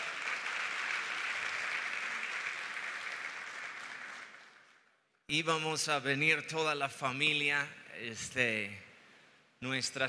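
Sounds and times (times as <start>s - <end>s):
audience applause: 0.0s - 4.8s
speech: 5.3s - 8.9s, 9.6s - 10.0s.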